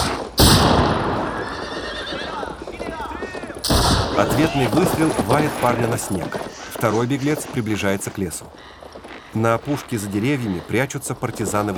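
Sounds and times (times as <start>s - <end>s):
horses neighing during a mounted chase through snow: 0.0s - 11.7s
speech: 4.2s - 11.7s.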